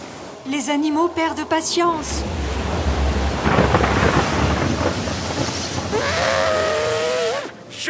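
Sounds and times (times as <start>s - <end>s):
speech: 0.4s - 2.5s
deep rumbling: 1.4s - 7.3s
heavy deluge rain pouring: 1.9s - 7.7s.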